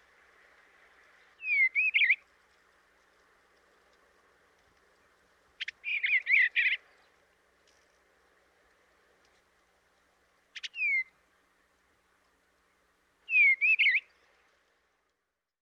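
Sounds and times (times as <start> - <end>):
Eastern Bluebird warbling whistled song: 1.1 - 2.2, 5.0 - 7.2, 10.5 - 11.2, 13.2 - 14.4.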